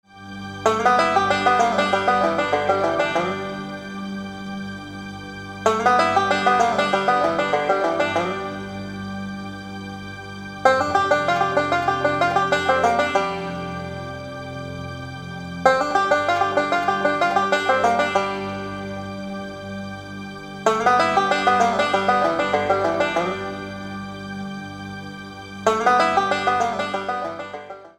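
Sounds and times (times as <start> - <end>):
barn dance music: 0.8 - 3.7, 5.8 - 8.6, 10.7 - 13.8, 15.6 - 18.8, 20.6 - 23.6, 25.6 - 27.8.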